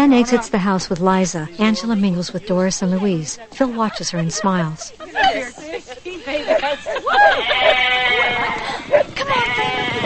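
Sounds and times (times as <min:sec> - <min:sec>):
speech: 0:00.0 - 0:05.6
laughter: 0:01.5 - 0:10.0
flock of sheep bleating: 0:07.2 - 0:10.0.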